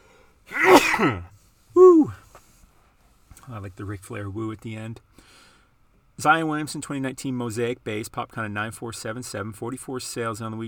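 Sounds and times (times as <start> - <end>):
loud sneeze trailing into a voiced exhale: 0.5 - 2.2
speech: 1.0 - 1.3, 3.5 - 5.4, 6.2 - 10.6.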